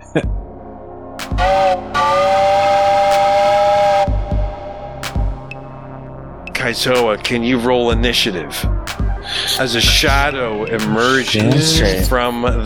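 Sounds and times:
speech: 0:00.2 - 0:00.4, 0:06.7 - 0:12.6
loud shrill whistle to call an animal: 0:01.3 - 0:05.7.

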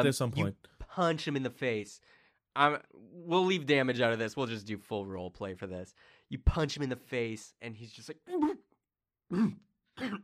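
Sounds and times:
speech: 0:00.0 - 0:08.6, 0:09.3 - 0:10.2
person mimicking coughing into a rag: 0:09.3 - 0:10.2.

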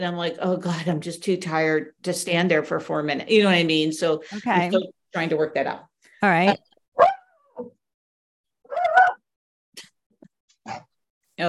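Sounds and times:
speech: 0:00.0 - 0:07.7
dog barking: 0:07.0 - 0:07.7.

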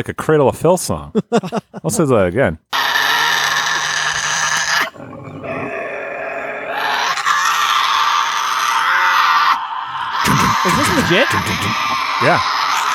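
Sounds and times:
speech: 0:00.0 - 0:02.7, 0:10.6 - 0:12.6
laughter: 0:01.1 - 0:02.0, 0:10.2 - 0:12.4
harsh sustained scream effect: 0:02.8 - 0:12.9.

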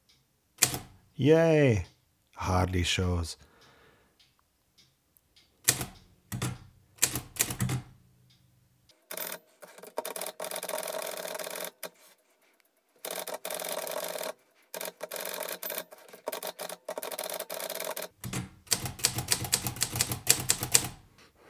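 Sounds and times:
manual typewriter typing: 0:00.6 - 0:01.0, 0:05.6 - 0:08.0, 0:09.0 - 0:12.1, 0:13.0 - 0:21.0
speech: 0:01.2 - 0:03.5.

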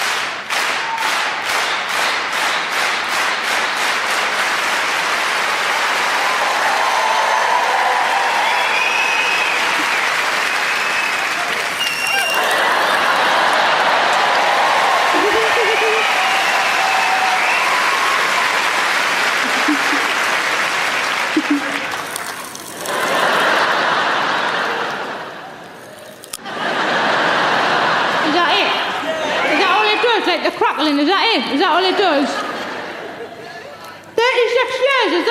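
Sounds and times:
group of people clapping their hands: 0:00.0 - 0:28.3
laughter: 0:06.7 - 0:34.5.

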